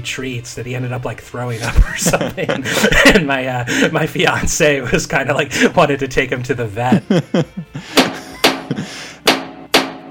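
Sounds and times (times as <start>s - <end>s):
speech: 0.0s - 8.0s
laughter: 1.5s - 4.5s, 6.8s - 9.2s
trash can banging: 9.3s - 10.0s.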